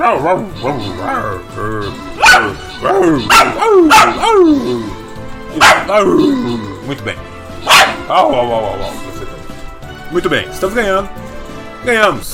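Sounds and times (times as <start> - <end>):
speech: 0.0 - 7.3, 8.1 - 9.2, 10.1 - 11.2, 11.8 - 12.3
dog barking: 2.2 - 4.4, 5.5 - 6.0, 7.6 - 8.1
dog whining and yelping excitedly: 3.2 - 4.8.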